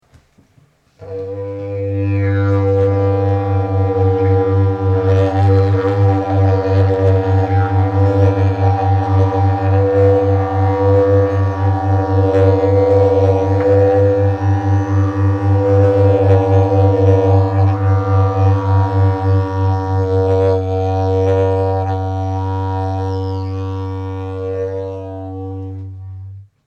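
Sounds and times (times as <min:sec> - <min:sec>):
binaural didjeridoo in SOL: 0:01.0 - 0:26.6.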